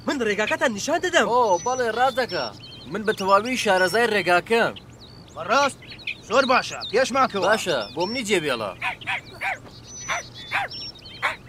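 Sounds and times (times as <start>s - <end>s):
speech: 0.1s - 9.2s
cartoon dog yelping barks: 8.8s - 11.4s.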